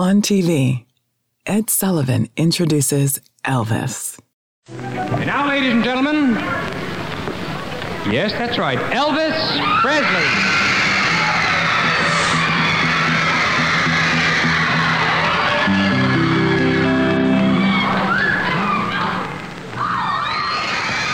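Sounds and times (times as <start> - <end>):
speech: 0.0 - 0.9, 1.5 - 6.8, 8.0 - 10.6
large audience screaming and shrieking for a performer: 8.7 - 21.1.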